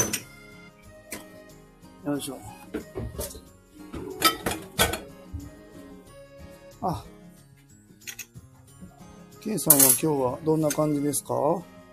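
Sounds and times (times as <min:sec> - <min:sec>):
pots, dishes and utensils clattering during cooking in a company kitchen: 0:00.0 - 0:00.3, 0:02.7 - 0:05.2
speech: 0:02.0 - 0:03.5, 0:06.8 - 0:07.1, 0:09.5 - 0:11.7.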